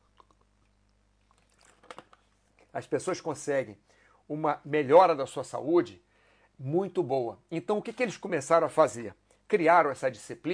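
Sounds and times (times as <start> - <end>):
person sipping water: 0.0 - 2.7
swallowing sounds: 0.0 - 2.7
wet mouth clicks: 0.0 - 2.7
speech: 2.8 - 10.5.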